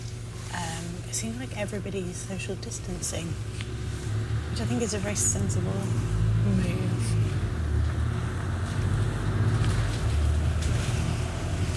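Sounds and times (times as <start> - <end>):
bus engine rumble driving fast on an empty road: 0.0 - 11.7
road and wind noise: 0.0 - 11.7
speech: 1.2 - 3.8, 4.5 - 7.2.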